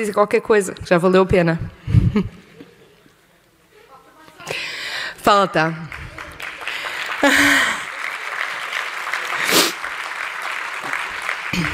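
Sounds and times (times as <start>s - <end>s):
speech: 0.0s - 2.4s, 5.3s - 6.0s
audience applause at a church youth gathering: 5.8s - 11.7s.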